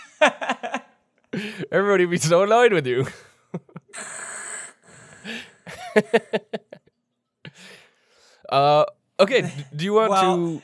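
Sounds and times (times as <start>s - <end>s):
laughter: 0.0s - 0.9s, 3.0s - 3.9s, 5.6s - 6.8s
speech: 0.2s - 0.6s, 1.5s - 3.6s, 6.0s - 6.7s, 8.5s - 10.6s
voice imitating heavy mechanical respirator breathing: 3.9s - 5.7s.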